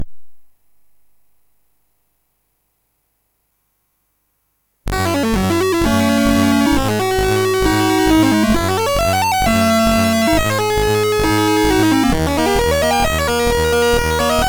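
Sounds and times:
synthesizer lead from a MOS6581R3 chip: 4.9s - 14.4s.

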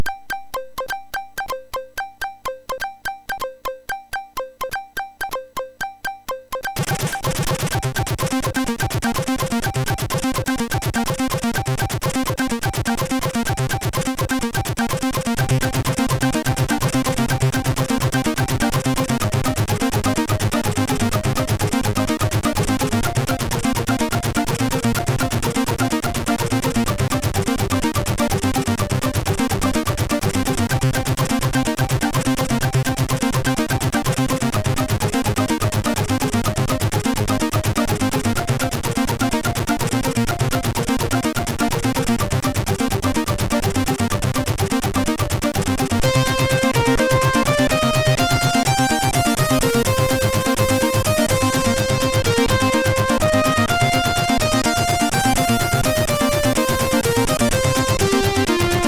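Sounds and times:
chiptune jingle on a SID sound chip: 0.0s - 58.8s.

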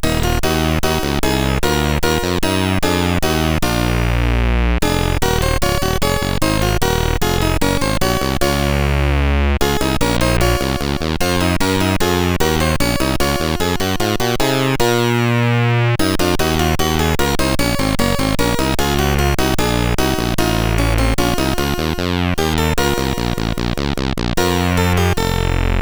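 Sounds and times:
music on a CSG8580R5 SID chip: 0.0s - 25.8s.

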